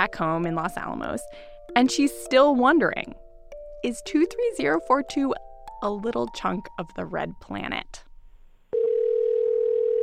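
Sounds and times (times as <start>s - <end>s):
speech: 0.0s - 3.2s, 3.8s - 8.1s
telephone dial tone: 8.7s - 10.0s.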